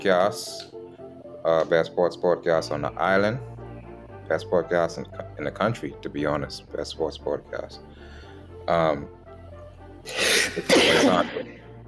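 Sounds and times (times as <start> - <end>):
speech: 0.0 - 0.8, 1.4 - 3.5, 4.3 - 9.2, 10.0 - 11.6
person coughing: 10.1 - 11.6.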